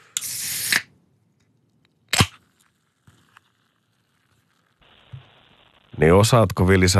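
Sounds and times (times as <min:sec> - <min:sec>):
drink can cracked open with fizzing hiss: 0:00.0 - 0:00.9, 0:02.1 - 0:03.4
sharp metallic pop of drink can: 0:02.1 - 0:02.4
speech: 0:06.0 - 0:06.9.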